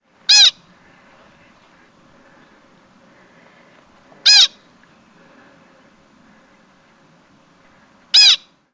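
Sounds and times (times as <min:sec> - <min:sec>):
pika giving short sharp squeaky calls: 0:00.3 - 0:00.7, 0:04.2 - 0:04.7, 0:08.1 - 0:08.5.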